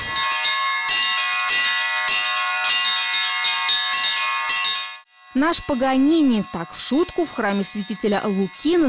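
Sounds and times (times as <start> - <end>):
church bells ringing from a bell tower: 0.0 - 8.8
speech: 5.4 - 8.8.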